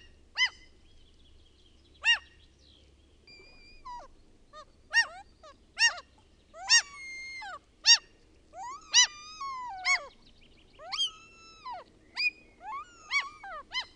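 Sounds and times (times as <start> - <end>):
common gull giving harmonic yelping notes and mewing cries: 0.0 - 0.6, 2.0 - 2.3, 3.3 - 10.2, 10.8 - 13.9.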